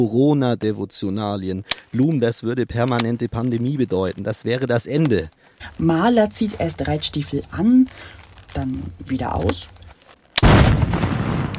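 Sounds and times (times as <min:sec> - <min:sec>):
speech: 0:00.0 - 0:09.8
distant cannon shot with long heavy rumble: 0:10.4 - 0:11.5.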